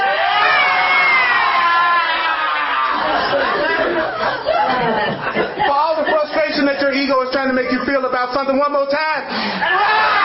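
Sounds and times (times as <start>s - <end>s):
large crowd screaming and cheering: 0.0s - 4.5s, 9.6s - 10.2s
scattered shouts and laughter: 0.0s - 6.6s, 9.6s - 10.2s
speech: 7.4s - 10.1s.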